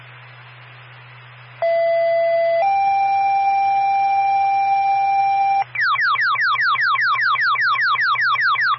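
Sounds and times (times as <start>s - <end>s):
faint low hum: 0.0s - 8.7s
radio dispatch alert tone for an ambulance: 1.6s - 8.7s.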